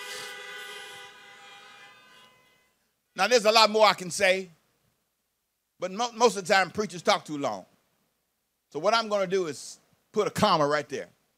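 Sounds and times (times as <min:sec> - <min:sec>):
several car horns honking: 0:00.0 - 0:02.8
speech: 0:03.2 - 0:04.6, 0:05.8 - 0:07.7, 0:08.7 - 0:11.2.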